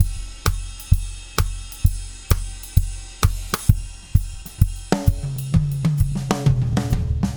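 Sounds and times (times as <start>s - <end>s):
acoustic drums with transient shaper effect: 0.0s - 7.3s.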